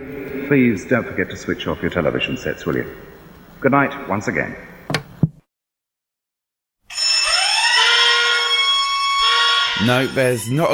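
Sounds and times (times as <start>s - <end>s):
speech: 0.0s - 4.7s, 9.8s - 10.7s
mobile phone alarm clock ringtone: 6.9s - 10.7s.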